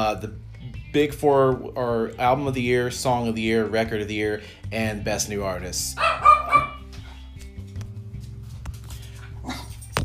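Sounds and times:
speech: 0:00.0 - 0:06.6
dogs barking while running around inside a house: 0:06.0 - 0:07.3
dogs yipping: 0:06.0 - 0:07.4, 0:09.1 - 0:10.0
dogs running around inside a house: 0:06.8 - 0:10.0.

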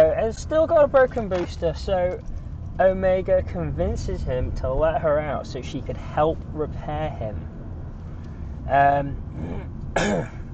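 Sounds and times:
speech: 0:00.3 - 0:07.5, 0:08.7 - 0:10.4
person with a cold clearing throat: 0:09.4 - 0:10.4.

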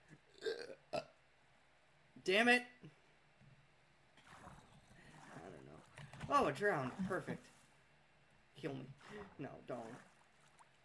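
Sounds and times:
person hiccuping: 0:00.3 - 0:01.2
speech: 0:02.3 - 0:03.0, 0:06.3 - 0:07.5, 0:08.6 - 0:10.1.

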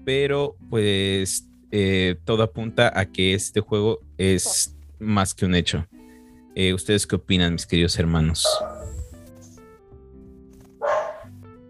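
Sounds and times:
speech: 0:00.0 - 0:06.0, 0:06.6 - 0:08.8
dog barking: 0:08.4 - 0:09.0, 0:10.8 - 0:11.3.

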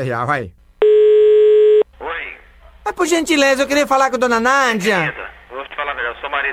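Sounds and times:
speech: 0:00.0 - 0:00.6, 0:03.0 - 0:05.2
telephone ringing tone of a call being placed: 0:00.8 - 0:01.8.

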